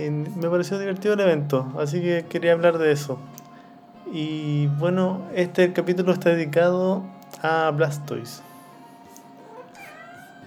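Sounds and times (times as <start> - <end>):
speech: 0.0 - 3.4, 4.1 - 8.5
cat meowing insistently to go outside: 9.3 - 10.4.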